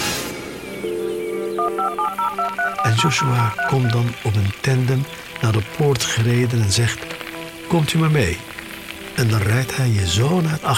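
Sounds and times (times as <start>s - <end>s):
speech: 0.8s - 8.5s, 9.2s - 10.7s
telephone keypad beeps: 1.5s - 4.0s
telephone dial tone: 1.6s - 3.9s.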